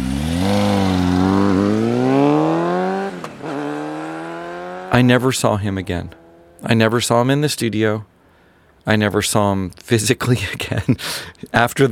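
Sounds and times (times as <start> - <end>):
motorcycle engine starting up and driving away: 0.0 - 5.1, 5.9 - 6.6
speech: 4.9 - 8.1, 8.8 - 11.9.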